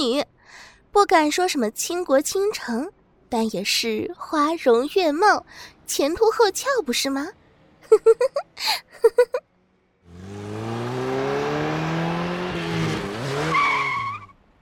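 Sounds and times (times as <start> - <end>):
speech: 1.0 - 9.5
high-end sports car engine revving hard: 10.0 - 13.5.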